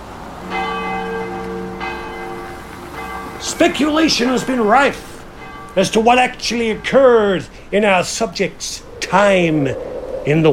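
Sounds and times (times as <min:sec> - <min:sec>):
church bell tolling curfew chimes: 0:00.4 - 0:07.5
speech: 0:03.5 - 0:05.1, 0:05.8 - 0:10.5.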